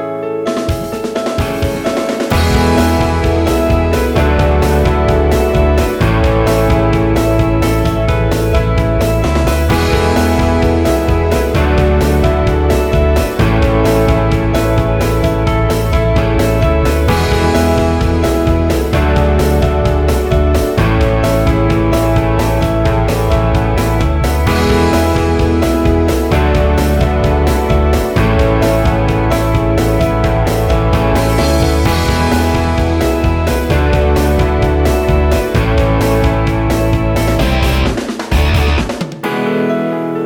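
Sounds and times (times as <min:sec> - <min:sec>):
pop music without guitar solo: 0:00.2 - 0:40.1.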